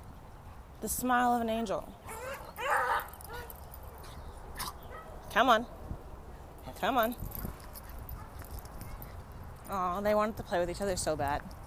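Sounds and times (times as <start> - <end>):
speech: 0.8 - 2.2, 5.3 - 5.8, 6.7 - 7.3, 9.7 - 11.6
dog barking: 2.1 - 3.5.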